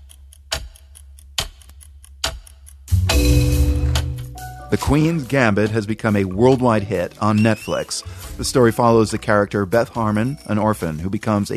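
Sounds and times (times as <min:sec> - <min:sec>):
chess clock ticking: 0:00.0 - 0:07.8
speech: 0:04.7 - 0:11.5.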